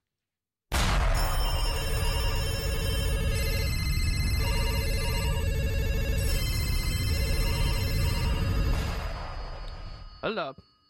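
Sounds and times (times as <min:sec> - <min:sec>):
telephone ringing jingle with electronic ring tones over music: 0:01.2 - 0:10.8
speech: 0:10.3 - 0:10.7.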